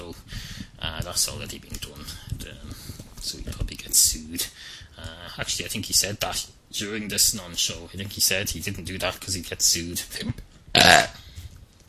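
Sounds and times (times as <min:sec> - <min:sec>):
speech: 0:01.1 - 0:02.6, 0:03.2 - 0:11.1
loud throaty belch: 0:10.8 - 0:11.2.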